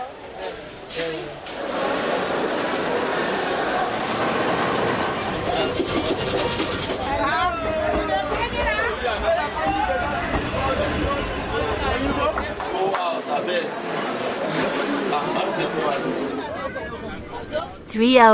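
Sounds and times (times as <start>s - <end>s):
passenger train pulling out of the station rumbling: 0.0s - 18.3s
voices chattering: 0.0s - 18.3s
knocks and clatter: 4.3s - 8.9s
speech: 18.0s - 18.3s.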